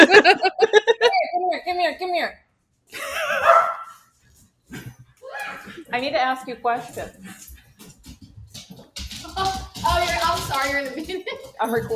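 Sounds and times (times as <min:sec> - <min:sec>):
laughter: 0:00.0 - 0:01.2, 0:03.0 - 0:03.5
person imitating a dog with short breathy barks: 0:03.3 - 0:03.9
speech: 0:06.0 - 0:07.5, 0:09.8 - 0:11.9.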